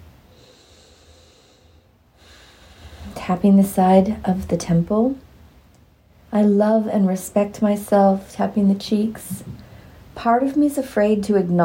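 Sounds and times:
long deep breath drawn in: 0:00.3 - 0:03.2
speech: 0:03.3 - 0:05.3, 0:06.3 - 0:09.6, 0:10.2 - 0:11.6.

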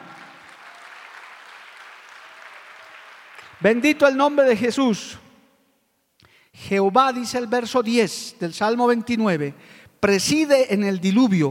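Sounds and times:
church audience applauding: 0:00.0 - 0:03.8
speech: 0:03.6 - 0:05.2, 0:06.6 - 0:11.5.

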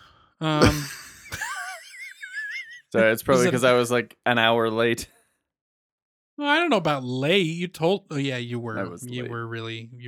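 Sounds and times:
speech: 0:00.4 - 0:00.8, 0:02.9 - 0:05.2, 0:06.4 - 0:10.0
person yawning with a voiced groan: 0:00.4 - 0:01.2
laughter: 0:00.6 - 0:03.6.

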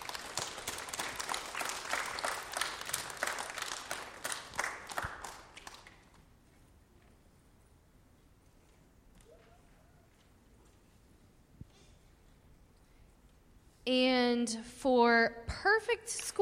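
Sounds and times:
audience applause for students: 0:00.0 - 0:06.3
faint noise: 0:00.0 - 0:16.3
speech: 0:13.9 - 0:16.3.

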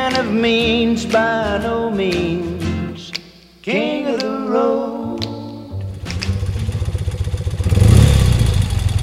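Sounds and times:
speech: 0:00.2 - 0:02.6, 0:03.6 - 0:04.9
BMW 650 motorcycle engine idling and revving: 0:05.9 - 0:09.0.

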